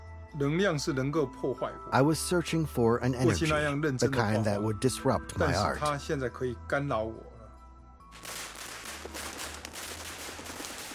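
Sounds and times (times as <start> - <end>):
speech: 0.4 - 7.3
long string of firecrackers exploding: 8.1 - 10.9.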